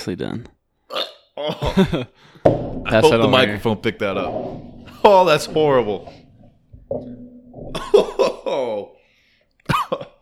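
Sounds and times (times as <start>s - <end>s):
speech: 0.0s - 0.6s, 1.4s - 6.2s, 6.9s - 8.9s
laughter: 1.4s - 2.2s, 7.7s - 9.0s
person coughing after drinking a vodka shot: 9.7s - 10.2s.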